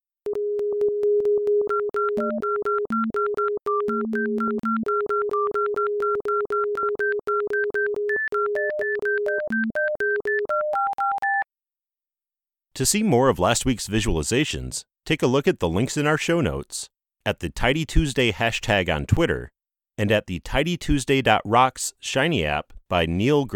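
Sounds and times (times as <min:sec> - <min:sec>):
electronic beep-like tones of a data sonification: 0:00.3 - 0:11.5
speech: 0:02.2 - 0:02.5, 0:12.8 - 0:23.5.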